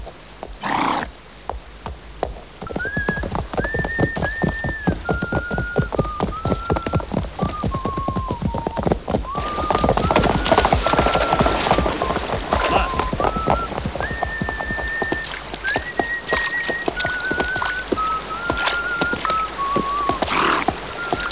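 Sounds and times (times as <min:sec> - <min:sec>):
horse walking to a riverbank: 0:00.0 - 0:21.2
person whistling while riding a horse: 0:02.7 - 0:20.3, 0:21.0 - 0:21.2.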